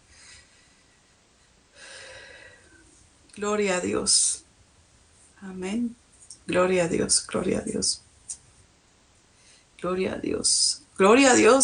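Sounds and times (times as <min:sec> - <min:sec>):
person breathing in deeply during a prayer: 0:01.8 - 0:02.8
speech: 0:03.4 - 0:04.4, 0:05.4 - 0:08.0, 0:09.8 - 0:11.6.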